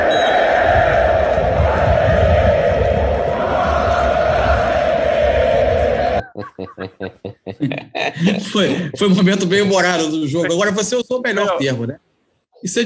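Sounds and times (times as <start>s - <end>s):
large football crowd singing a taunting chant: 0.0s - 6.3s
laughter: 6.0s - 10.6s
speech: 8.6s - 12.0s, 12.6s - 12.8s.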